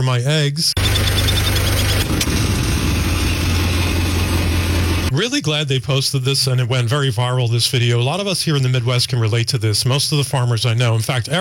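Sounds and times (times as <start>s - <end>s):
speech: 0.0s - 2.6s, 5.2s - 11.3s
farmer's stopped tractor engine idling: 0.8s - 5.1s.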